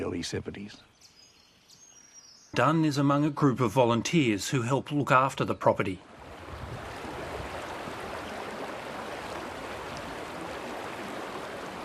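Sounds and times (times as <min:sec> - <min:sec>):
speech: 0:00.2 - 0:01.1, 0:02.5 - 0:06.1
rushing creek water: 0:05.8 - 0:11.8.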